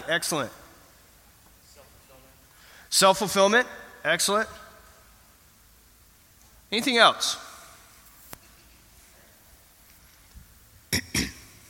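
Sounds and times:
speech: 0.1s - 0.6s, 2.9s - 4.6s, 6.7s - 7.4s
person coughing: 10.9s - 11.6s.

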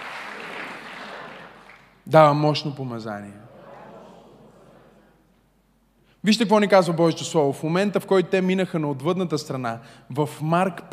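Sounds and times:
audience applauding: 0.0s - 2.0s
speech: 2.1s - 3.5s, 6.2s - 10.9s.

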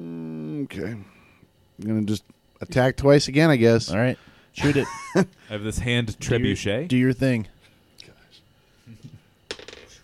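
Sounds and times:
speech: 0.7s - 1.2s, 1.8s - 7.5s
dice clattering onto a hard tabletop in a tabletop game: 9.5s - 10.0s.

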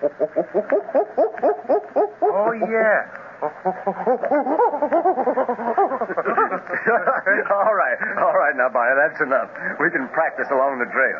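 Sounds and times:
speech: 0.0s - 1.0s, 2.7s - 4.9s, 6.9s - 11.1s
person imitating a gorilla's bark with throaty hoots: 0.0s - 2.8s, 3.4s - 6.6s
laughter: 3.6s - 8.3s.

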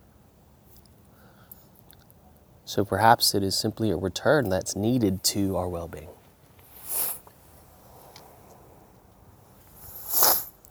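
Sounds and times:
speech: 2.7s - 6.2s
breathy sniffs through a congested nose: 6.6s - 8.8s, 9.6s - 10.6s.

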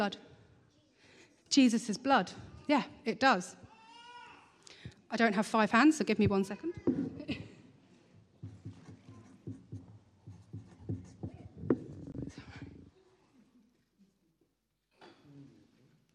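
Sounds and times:
speech: 0.0s - 0.3s, 1.5s - 3.6s, 5.1s - 7.4s
pen scratching across a piece of paper in writing: 8.4s - 12.8s.

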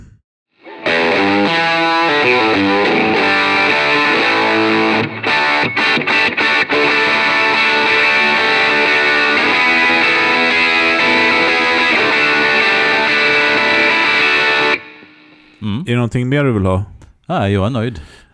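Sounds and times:
heavily overdriven electric guitar lead through a pedal: 0.7s - 15.1s
speech: 16.1s - 18.2s.

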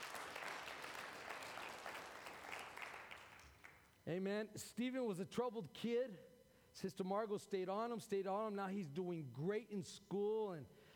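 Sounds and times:
church audience clapping: 0.0s - 4.0s
speech: 4.0s - 10.9s.

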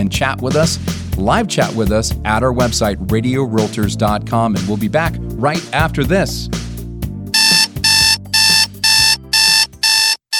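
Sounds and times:
speech: 0.0s - 6.6s
alarm clock shrill electronic beeping: 7.4s - 10.3s.

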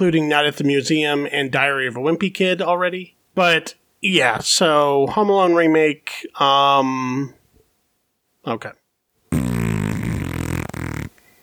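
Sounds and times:
speech: 0.0s - 7.4s, 8.4s - 8.8s
loud buzzy fart sound effect: 9.3s - 11.2s.

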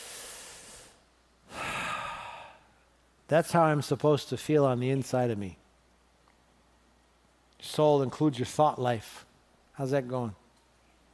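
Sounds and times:
big deep relaxing breath in and out: 0.0s - 2.9s
speech: 3.3s - 5.6s, 7.8s - 10.4s.

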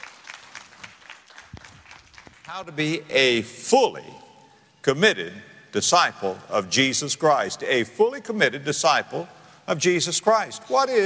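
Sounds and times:
congregation applauding: 0.0s - 3.0s
speech: 2.5s - 11.0s.

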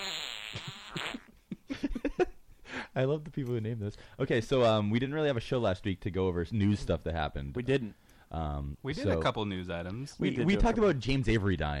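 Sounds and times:
buzzing fart sound effect: 0.0s - 1.4s
speech: 3.0s - 11.7s.

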